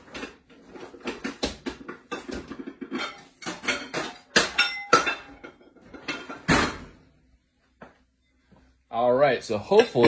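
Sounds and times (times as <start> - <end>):
kitchenware clattering as a cover is set onto a microwave casserole dish: 0.0 - 7.0, 9.7 - 10.0
speech: 9.0 - 10.0.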